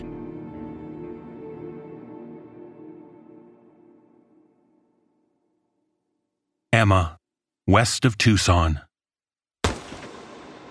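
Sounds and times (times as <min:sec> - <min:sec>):
speech: 0:06.8 - 0:08.9
single loud gunshot with rumbling echo: 0:09.6 - 0:10.6.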